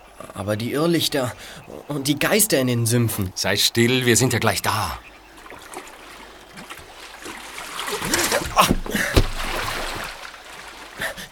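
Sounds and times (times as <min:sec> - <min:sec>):
speech: 0:00.3 - 0:05.1
rowboat sloshing and splashing through water: 0:04.1 - 0:11.2
rowboat running aground on a tree stump: 0:06.6 - 0:10.2.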